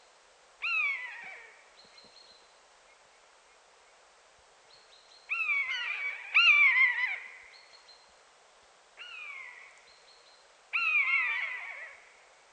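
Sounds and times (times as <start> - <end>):
common buzzard calling in its natural habitat: 0.6 - 1.6, 5.3 - 7.6, 9.0 - 9.8, 10.7 - 12.2.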